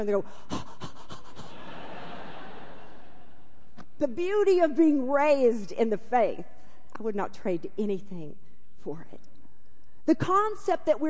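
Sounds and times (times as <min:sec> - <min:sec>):
speech: 0:00.0 - 0:00.7, 0:04.0 - 0:09.3, 0:10.1 - 0:11.0
voice imitating heavy panting: 0:00.4 - 0:01.5
laughter: 0:01.4 - 0:03.4.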